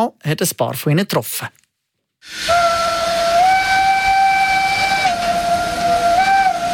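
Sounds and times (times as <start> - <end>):
speech: 0.0 - 1.6, 2.2 - 2.7
black-green steam locomotive whistle on a mountain railway in the Swiss Alps: 2.2 - 6.7.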